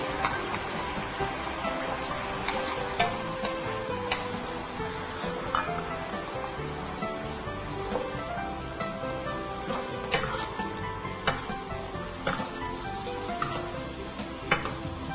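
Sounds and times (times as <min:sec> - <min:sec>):
beef stir-frying in a hot pan with chives and seasoning: 0:00.0 - 0:15.1
utensil scraping and tossing against a metal pan: 0:05.4 - 0:05.9, 0:10.1 - 0:10.6, 0:11.2 - 0:11.6, 0:12.2 - 0:12.6, 0:13.3 - 0:13.7, 0:14.5 - 0:14.9.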